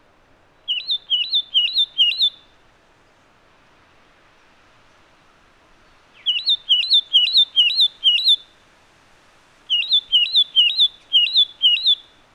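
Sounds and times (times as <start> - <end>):
Satin flycatcher giving high wavering whistles: 0.7 - 2.4, 6.2 - 8.4, 9.7 - 12.0.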